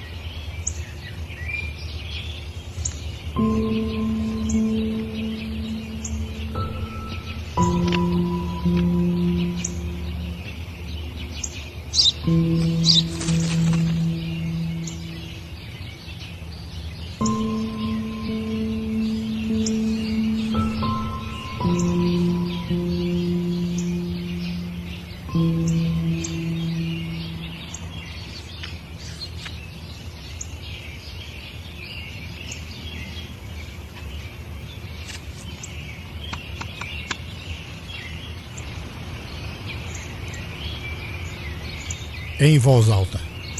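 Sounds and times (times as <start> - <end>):
sparrows chirping outdoors: 0.0 - 43.5
speech: 3.4 - 3.8, 42.4 - 43.3.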